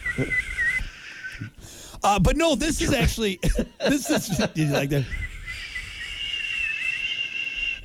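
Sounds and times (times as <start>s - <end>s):
whistling through gap of missing teeth: 0.0s - 1.6s, 5.0s - 7.8s
speech: 0.2s - 0.6s, 2.0s - 5.2s
laughter: 3.4s - 5.1s.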